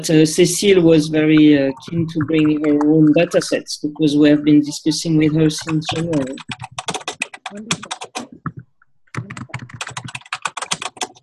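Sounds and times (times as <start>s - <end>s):
speech: 0.0s - 6.7s, 7.5s - 8.0s
typing on a new clicky computer keyboard: 2.2s - 11.2s.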